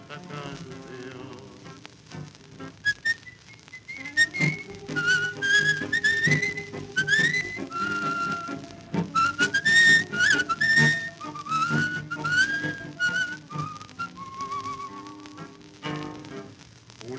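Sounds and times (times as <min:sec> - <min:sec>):
person whistling a tune within a song: 0:02.8 - 0:15.2.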